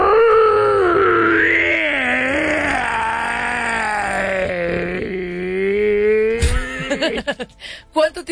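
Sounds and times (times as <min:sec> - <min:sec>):
person imitating a hoarse wolf-like howl: 0:00.0 - 0:07.3.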